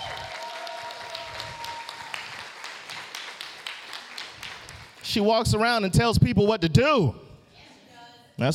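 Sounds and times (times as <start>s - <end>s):
audience applause: 0.0s - 5.1s
speech: 5.2s - 7.2s, 8.4s - 8.5s.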